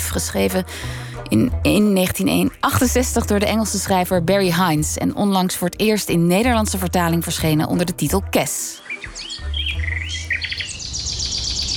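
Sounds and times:
speech: 0:00.1 - 0:09.1
finch singing a trilling song among tree branches: 0:08.4 - 0:11.7.

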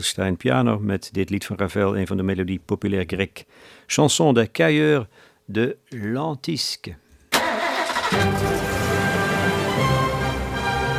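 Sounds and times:
speech: 0:00.0 - 0:07.0, 0:08.1 - 0:08.7
large bus engine in Amersfoort starting and idling: 0:07.4 - 0:10.9.

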